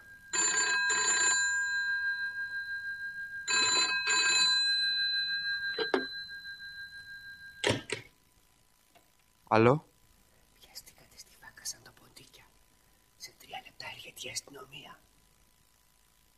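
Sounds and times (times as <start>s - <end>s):
telephone ringing in bright trilling bursts: 0.0s - 8.1s
speech: 9.5s - 9.9s.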